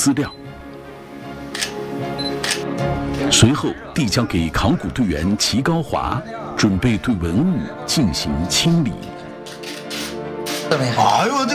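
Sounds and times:
speech: 0.0 - 0.4, 2.8 - 9.2, 10.7 - 11.5
steady low tonal background: 0.0 - 10.7
camera shutter clicks photographing an excavated jade seal: 1.5 - 2.7, 9.4 - 10.7.

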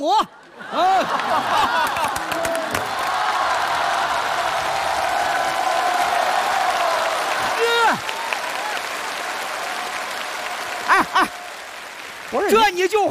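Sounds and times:
speech: 0.0 - 1.8, 12.3 - 13.0
laughter: 0.0 - 2.9, 10.8 - 11.4
live audience applause: 0.3 - 13.0
live audience cheering and whooping: 0.5 - 12.5.

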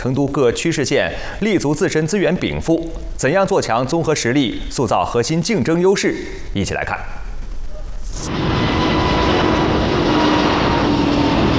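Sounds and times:
speech: 0.0 - 7.2, 8.2 - 8.6
turbofan engine roaring: 8.2 - 11.5.

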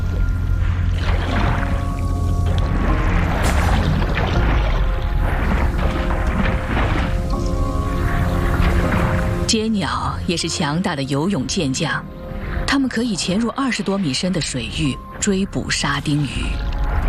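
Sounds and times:
constant loud churning sea water: 0.0 - 17.0
gannets plunge-diving into the sea: 0.9 - 9.5
speech: 9.6 - 16.7.

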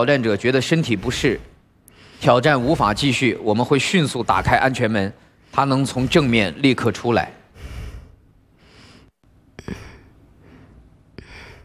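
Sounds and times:
speech: 0.0 - 1.5, 2.2 - 7.4
faint hiss: 0.0 - 11.6
heavy labored panting from exhaustion after climbing through an obstacle-course cylinder: 2.0 - 3.4, 4.2 - 5.3, 5.9 - 6.6, 7.5 - 11.6.

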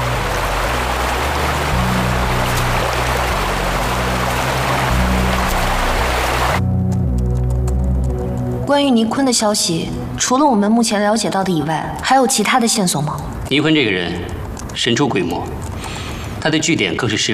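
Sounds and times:
stream water flowing: 0.0 - 6.6
low droning hum: 0.0 - 8.7
speech: 8.7 - 17.3.

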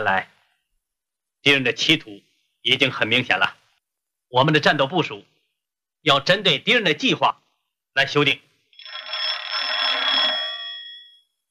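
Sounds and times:
speech: 0.0 - 0.3, 1.4 - 3.6, 4.3 - 5.3, 6.0 - 7.4, 8.0 - 8.4
metallic telephone bell ringing: 8.8 - 11.4.

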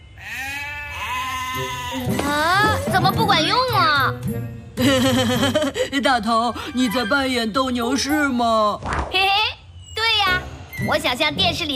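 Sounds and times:
lamb bleating: 0.2 - 2.2
speech: 1.5 - 9.3, 10.8 - 11.7
laughter: 4.8 - 6.0.

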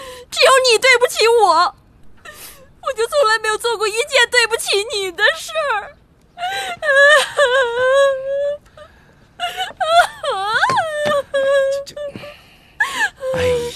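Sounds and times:
speech: 0.6 - 1.8, 2.8 - 8.7, 9.4 - 10.8, 11.4 - 12.3
woman crying and wailing: 4.6 - 8.6, 9.4 - 13.7.

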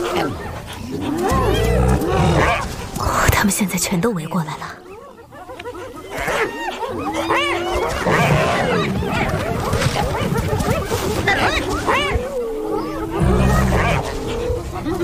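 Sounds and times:
spotted hyenas whooping, yelping and cackling: 0.0 - 2.9, 4.9 - 15.0
lion snarling and roaring: 0.0 - 3.0, 7.1 - 15.0
speech: 0.2 - 1.3, 3.4 - 4.8.

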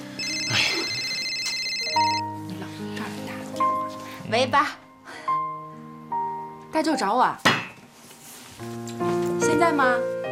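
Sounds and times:
mobile phone ringtone with electronic melody: 0.2 - 2.3
speech: 4.3 - 4.8, 6.8 - 7.5, 8.6 - 10.2.

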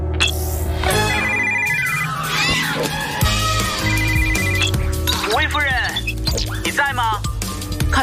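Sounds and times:
busy musical backdrop: 0.0 - 8.0
phone ringtone during outgoing call to a mobile phone: 0.2 - 6.2.

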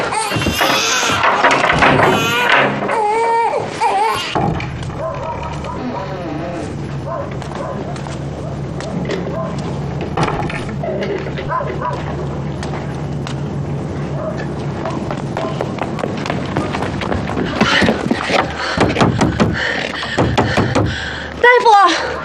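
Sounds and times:
steady low hum: 0.0 - 22.2
sharp raps on a wooden door: 20.2 - 21.0
young woman calling to a doctor: 21.4 - 22.1.

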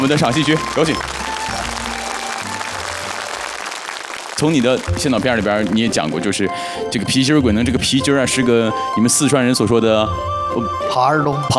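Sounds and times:
speech: 0.0 - 1.2, 4.4 - 11.5
audience applause at a theatre performance: 0.0 - 6.2.

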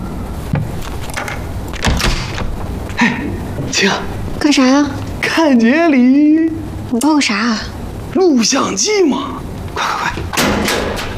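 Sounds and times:
door being opened with clunk, scraping thud and knock: 0.4 - 4.1, 10.2 - 11.1
speech: 3.0 - 10.0.

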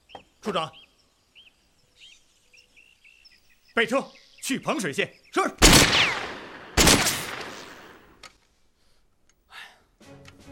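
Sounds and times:
speech: 0.4 - 0.8, 3.8 - 6.1
gunshots: 5.6 - 8.1
faint clicks: 9.2 - 9.4.

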